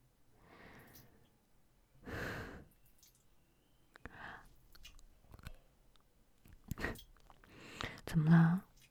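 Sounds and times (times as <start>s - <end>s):
wet mouth sounds of biting and sucking on skin: 3.9s - 8.0s
speech: 8.2s - 8.4s.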